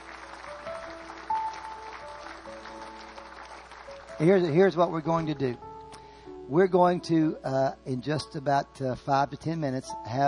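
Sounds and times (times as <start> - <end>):
church audience clapping: 0.0 - 5.4
soft sustained keyboard notes: 4.1 - 10.2
speech: 4.2 - 5.7, 6.5 - 10.2.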